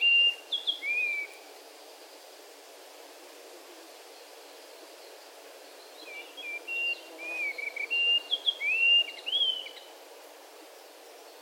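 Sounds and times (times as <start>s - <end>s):
White-throated rock thrush singing whistled phrases in the Amur region: 0.0s - 1.4s, 5.7s - 9.9s.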